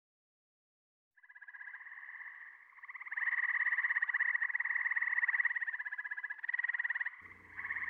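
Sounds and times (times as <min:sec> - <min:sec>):
Gray treefrog trilling: 0:01.2 - 0:07.8
low hum: 0:07.2 - 0:07.8.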